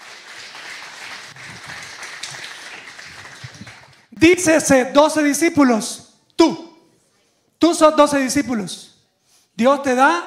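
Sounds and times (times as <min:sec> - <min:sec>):
audience clapping: 0:00.0 - 0:04.2
speech: 0:04.2 - 0:06.6, 0:07.6 - 0:08.9, 0:09.6 - 0:10.2.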